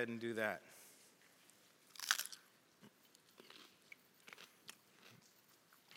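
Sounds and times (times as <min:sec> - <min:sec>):
person crunching on crisp greens dipped in salt water: 0:01.8 - 0:02.4, 0:03.2 - 0:05.9
soft chewing crunches of greens: 0:01.9 - 0:05.9.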